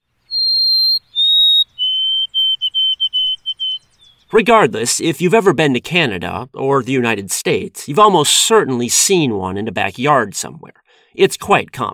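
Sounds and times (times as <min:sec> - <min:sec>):
white-throated sparrow singing: 0:00.1 - 0:04.4
speech: 0:04.3 - 0:11.9.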